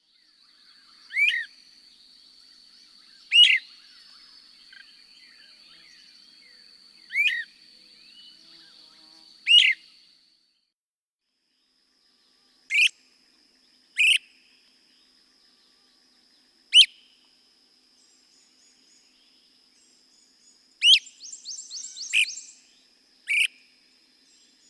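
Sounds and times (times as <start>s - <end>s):
Great Crested Flycatcher: 0.5s - 10.0s, 12.2s - 17.3s, 18.0s - 24.6s.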